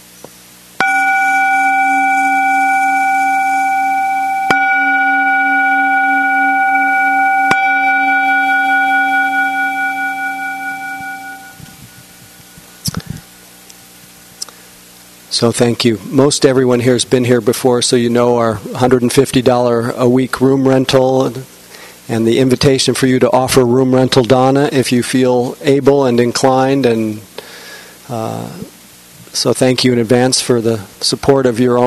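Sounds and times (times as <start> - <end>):
small meditation gong struck and ringing: 0.8 - 12.8
speech: 15.4 - 21.5, 22.1 - 27.3, 28.1 - 28.6, 29.4 - 31.8.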